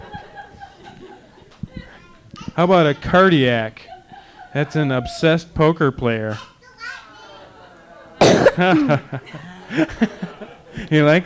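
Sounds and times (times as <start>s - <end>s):
laughter: 0.0s - 5.9s, 7.1s - 11.2s
speech: 2.6s - 3.9s, 4.5s - 6.5s, 8.6s - 11.2s
child coughing into microphone: 8.2s - 8.9s.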